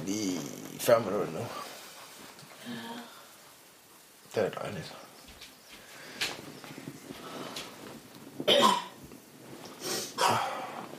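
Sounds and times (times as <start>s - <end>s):
speech: 0.1s - 1.7s, 4.4s - 5.0s
harsh coughs: 8.5s - 9.0s.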